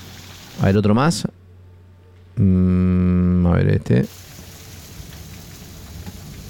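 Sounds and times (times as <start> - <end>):
speech: 0.6 - 1.4, 2.4 - 4.2
heavy rain during a storm with hail and lightning in Fray Luis Beltrán, Mendoza: 4.1 - 6.4.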